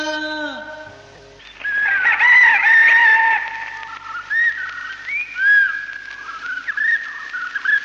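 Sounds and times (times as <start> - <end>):
whistling and chirping calls: 1.4 - 7.8
rooster crowing: 1.7 - 4.1.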